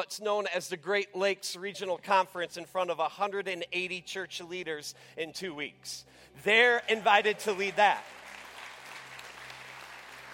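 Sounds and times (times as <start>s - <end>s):
speech: 0.0s - 8.2s
crowd of people clapping in a large room: 6.5s - 10.3s.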